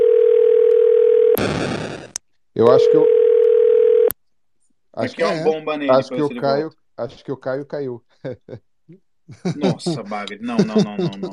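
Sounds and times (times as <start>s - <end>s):
telephone dial tone as a phone call is placed: 0.0s - 1.4s, 3.0s - 4.1s
speech: 2.6s - 3.2s, 5.0s - 11.3s
laughter: 8.2s - 8.6s, 9.3s - 11.3s.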